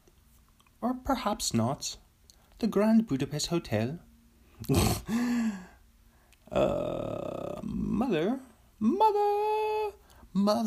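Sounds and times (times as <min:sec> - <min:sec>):
speech: 0:00.8 - 0:02.0, 0:02.6 - 0:05.6, 0:06.5 - 0:07.1, 0:07.7 - 0:09.7, 0:10.4 - 0:10.6
person imitating a wolf howl: 0:06.5 - 0:10.0.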